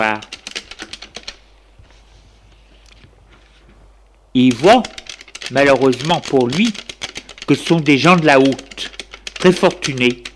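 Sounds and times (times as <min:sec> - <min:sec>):
speech: 0:00.0 - 0:00.3, 0:04.4 - 0:06.8, 0:07.5 - 0:10.3
keystrokes on a computer keyboard in an office: 0:00.0 - 0:01.4, 0:04.5 - 0:10.3.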